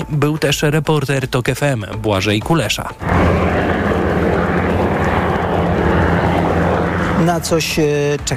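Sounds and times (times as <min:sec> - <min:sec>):
speech: 0:00.0 - 0:03.9, 0:07.2 - 0:08.3
military jet passing overhead in an air parade rehearsal in Poland's capital: 0:03.0 - 0:08.3.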